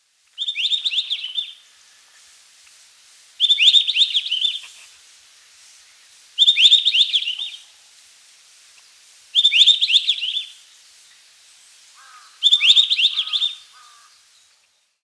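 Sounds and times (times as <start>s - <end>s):
white-browed bush robin: 0.4s - 2.4s, 3.4s - 4.9s, 5.8s - 7.8s, 8.7s - 15.0s.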